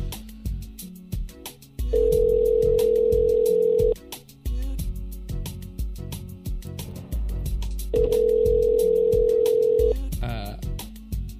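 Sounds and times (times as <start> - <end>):
busy rhythmic background: 0.0 - 11.3
telephone ringback tone on an outgoing call: 2.0 - 4.0, 8.0 - 10.0.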